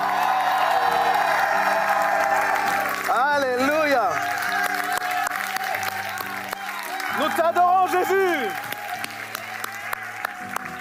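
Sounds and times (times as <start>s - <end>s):
applause: 0.0s - 10.7s
audience shouting and cheering: 0.0s - 10.7s.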